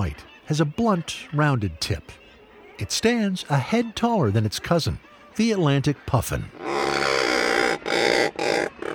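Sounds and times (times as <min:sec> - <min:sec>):
speech: 0:00.1 - 0:02.2, 0:02.8 - 0:07.0
razorbill coarse croaking calls: 0:06.3 - 0:08.9.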